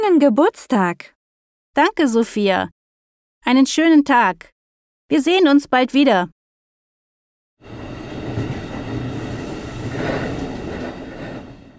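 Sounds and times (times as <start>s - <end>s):
speech: 0.0s - 1.2s, 1.8s - 2.8s, 3.4s - 4.5s, 5.1s - 6.4s
train rolling on rails: 7.6s - 11.7s.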